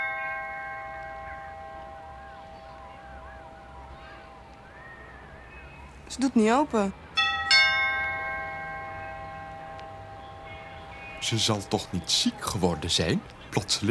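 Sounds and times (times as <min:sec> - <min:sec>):
doorbell chiming: 0:00.0 - 0:03.2, 0:07.2 - 0:11.5
speech: 0:06.1 - 0:07.0, 0:11.3 - 0:13.9.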